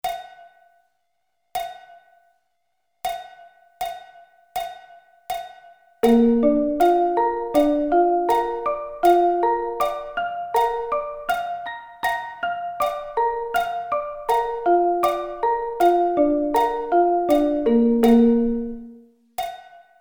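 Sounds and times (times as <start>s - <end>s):
B flat arpeggio inversions: 6.0s - 19.0s.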